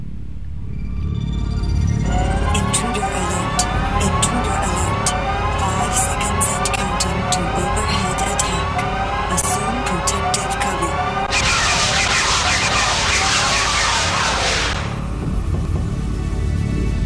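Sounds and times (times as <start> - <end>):
low rumble: 0.0 - 17.0
laser tag arena electronic intruder alarm wailing: 0.8 - 15.1.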